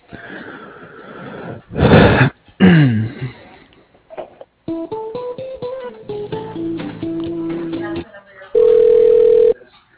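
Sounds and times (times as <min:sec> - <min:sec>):
breathy vocal noises: 0:00.0 - 0:04.2
telephone line tones during a call transfer: 0:08.6 - 0:09.6.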